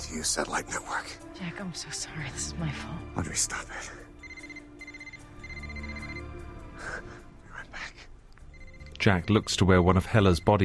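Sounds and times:
speech: 0:00.1 - 0:04.1, 0:09.0 - 0:10.6
mobile phone ringing with electronic ringtone: 0:04.2 - 0:10.6.

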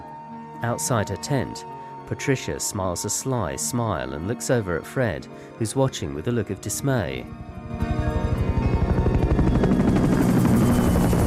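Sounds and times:
speech: 0:00.6 - 0:08.0
army helicopter flying away overhead: 0:06.2 - 0:11.2.

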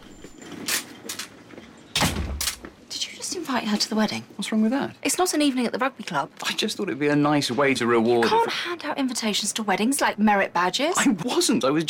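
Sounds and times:
door shutting with a solid thud: 0:02.0 - 0:02.7
speech: 0:03.5 - 0:11.8.

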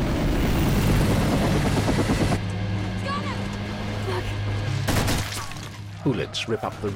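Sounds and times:
attack helicopter rotor roar passing overhead: 0:00.0 - 0:05.1
speech: 0:06.0 - 0:06.9.

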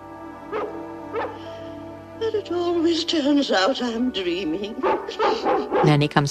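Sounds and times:
Dalmatians barking: 0:00.5 - 0:01.5, 0:04.8 - 0:06.3
speech: 0:02.2 - 0:06.3.

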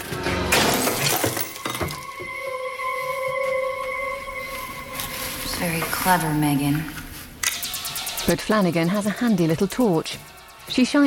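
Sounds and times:
light bulb smashed with a cutlery knife: 0:00.5 - 0:02.1
steady tonal hum: 0:02.0 - 0:09.4
speech: 0:05.6 - 0:07.0, 0:08.3 - 0:11.0.

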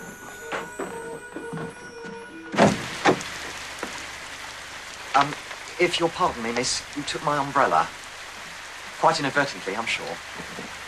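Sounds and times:
front door being opened: 0:00.0 - 0:04.2
speech: 0:05.2 - 0:08.0, 0:09.0 - 0:10.8.

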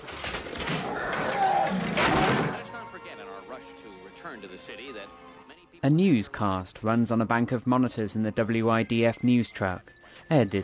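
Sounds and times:
doors bursting open as a lizard crashes through them: 0:00.0 - 0:02.9
speech: 0:04.4 - 0:10.6.

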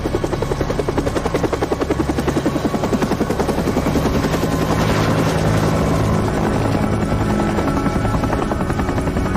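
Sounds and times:
helicopter taking off with thumping rotor and engine whine: 0:00.0 - 0:09.3.

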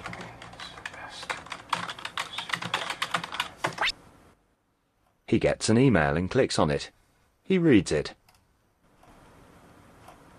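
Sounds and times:
rapid intense typing on a computer keyboard: 0:00.0 - 0:03.8
speech: 0:05.3 - 0:08.2.

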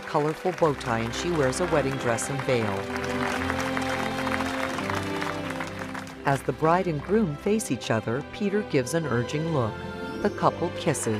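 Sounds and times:
group applauding outside a large church at a wedding: 0:00.0 - 0:07.3
speech: 0:00.1 - 0:03.7, 0:06.3 - 0:11.1.

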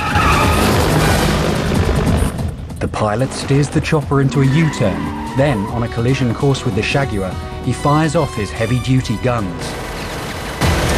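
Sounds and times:
car tires skidding while braking suddenly during a chase: 0:00.0 - 0:10.9
low car engine rumble: 0:00.0 - 0:10.9
speech: 0:03.0 - 0:09.9.

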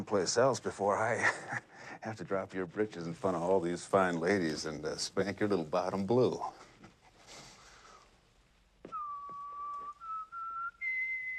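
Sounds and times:
speech: 0:00.0 - 0:06.6
soft breathy sniff: 0:07.1 - 0:08.1
person whistling a short rising tune: 0:08.9 - 0:11.3.

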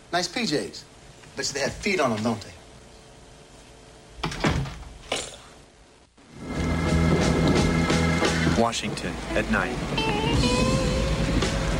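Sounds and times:
speech: 0:00.1 - 0:02.6, 0:08.6 - 0:10.7
dark car engine rumbling with faint whine while parking on a curb in Washington: 0:06.4 - 0:11.7.

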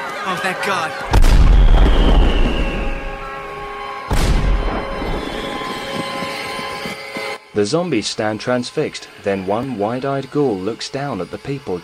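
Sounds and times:
speech: 0:00.2 - 0:02.2, 0:07.6 - 0:11.8
sharp loud firework bang: 0:01.1 - 0:03.2, 0:04.1 - 0:04.9
fireworks exploding in the sky: 0:01.1 - 0:06.2.

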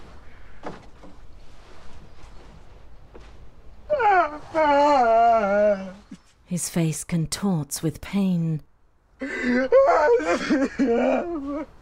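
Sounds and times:
man sobbing overwhelmed with emotion: 0:03.9 - 0:06.0, 0:09.2 - 0:11.8
speech: 0:06.6 - 0:11.8.

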